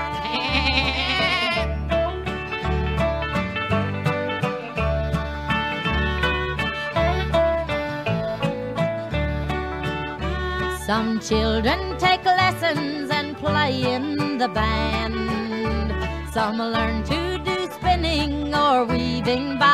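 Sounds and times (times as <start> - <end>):
billy goat bleating: 0.0 - 1.8, 4.8 - 10.6
bouncy steady musical accompaniment: 0.0 - 19.7
speech: 10.9 - 15.6, 16.4 - 19.7.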